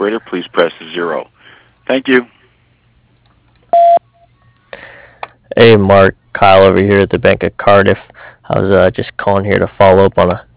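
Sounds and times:
speech: 0:01.9 - 0:02.4, 0:05.6 - 0:10.5
voicemail beep: 0:03.7 - 0:04.3.

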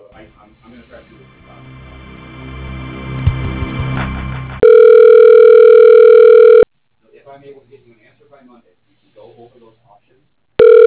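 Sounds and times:
telephone line hum: 0:04.6 - 0:06.7, 0:10.6 - 0:10.8.

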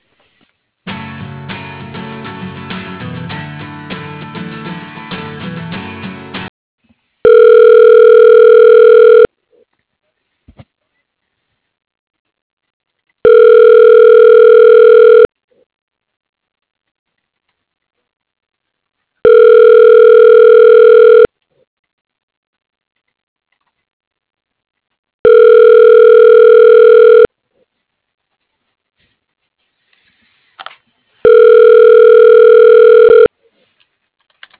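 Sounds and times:
telephone ringback tone as a call is transferred to voicemail: 0:07.2 - 0:09.3, 0:13.2 - 0:15.3, 0:19.2 - 0:21.3, 0:25.2 - 0:27.3, 0:31.2 - 0:33.3.

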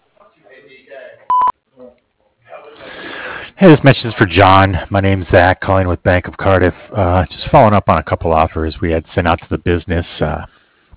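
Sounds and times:
answering machine beep: 0:01.3 - 0:01.5
speech: 0:03.6 - 0:10.5.

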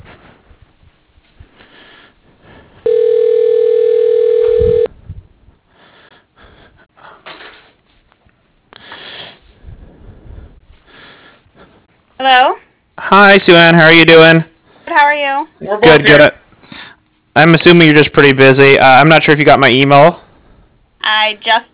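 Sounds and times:
faint breathing on a telephone line: 0:01.4 - 0:02.9, 0:05.7 - 0:07.9, 0:08.7 - 0:12.0, 0:16.6 - 0:17.1
steady electronic phone tone during call transfer: 0:02.9 - 0:04.9
speech: 0:13.1 - 0:14.5, 0:15.6 - 0:16.4, 0:17.4 - 0:20.2, 0:21.0 - 0:21.7.

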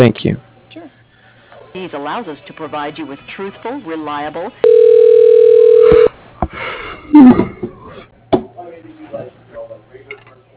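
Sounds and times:
speech: 0:00.0 - 0:00.5, 0:01.8 - 0:07.6
telephone line tone as a call is transferred to voicemail: 0:04.6 - 0:06.1.

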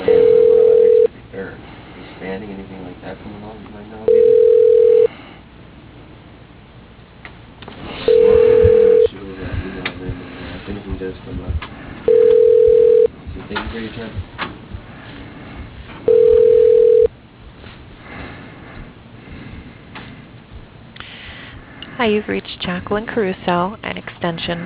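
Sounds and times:
telephone ringback tone during call transfer: 0:00.0 - 0:01.1, 0:04.1 - 0:05.1, 0:08.0 - 0:09.1, 0:12.1 - 0:13.1, 0:16.1 - 0:17.1
speech: 0:22.1 - 0:24.6.

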